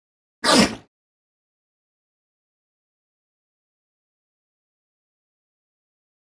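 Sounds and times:
elephant seal sneezing: 0.4s - 0.9s.

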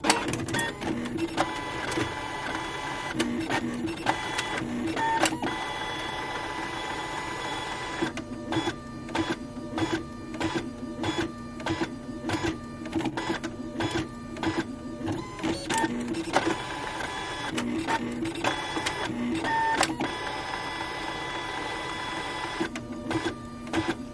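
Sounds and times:
printer machine clicking: 0.0s - 24.1s.

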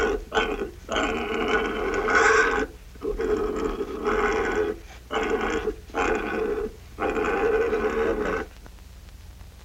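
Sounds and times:
pig giving harsh drawn-out squealing grunts: 0.0s - 8.5s.

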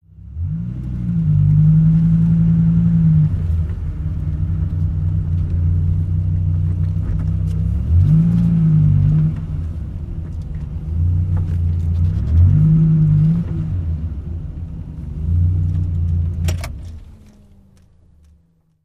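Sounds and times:
sports car accelerating in reverse: 0.2s - 18.5s.

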